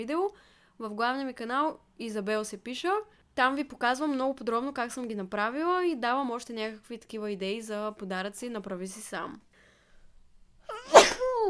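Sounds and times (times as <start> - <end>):
speech: 0.0 - 9.5
loud human sneeze: 10.7 - 11.4.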